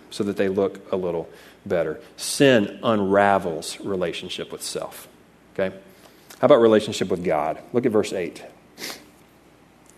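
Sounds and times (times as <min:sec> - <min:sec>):
speech: 0:00.1 - 0:09.0
person with a head cold sniffling through a stuffy nose: 0:08.8 - 0:09.2.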